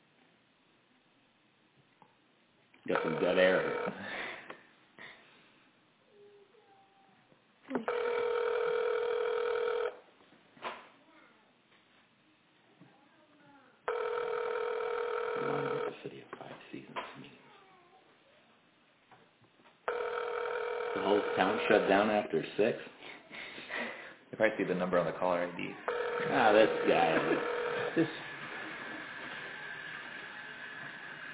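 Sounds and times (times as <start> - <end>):
faint noise: 0.0 - 31.3
long buzzing telephone ring tones on the line: 2.9 - 4.0, 7.7 - 10.0, 13.9 - 16.0, 19.9 - 22.3, 25.8 - 30.6
speech: 2.9 - 4.2, 21.9 - 22.9, 24.4 - 28.2.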